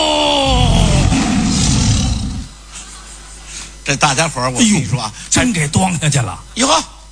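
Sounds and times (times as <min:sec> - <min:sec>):
tiger roaring: 0:00.2 - 0:02.6
speech: 0:03.9 - 0:07.0.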